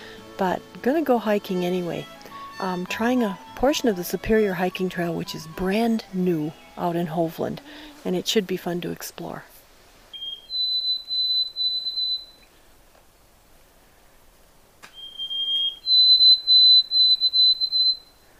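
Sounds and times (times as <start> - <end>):
speech: 0.4 - 9.5
white-throated sparrow whistled song: 10.2 - 12.4, 14.9 - 18.2.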